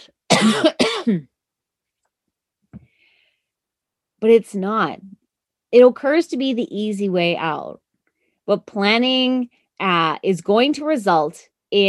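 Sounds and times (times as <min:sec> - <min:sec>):
speech: 0:00.0 - 0:01.3, 0:04.2 - 0:07.8, 0:08.5 - 0:11.8
person coughing harshly: 0:00.0 - 0:01.4.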